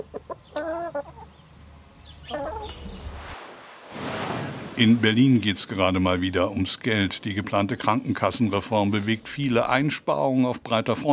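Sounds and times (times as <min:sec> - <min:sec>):
chickens clucking: 0:00.0 - 0:03.1
rushing hiss: 0:02.9 - 0:05.4
speech: 0:04.8 - 0:11.1.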